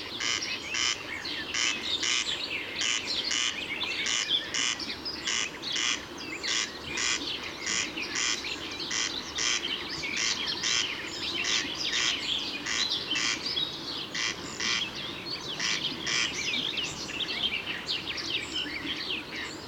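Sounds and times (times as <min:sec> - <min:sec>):
corncrake calling in Murnau: 0:00.1 - 0:19.5.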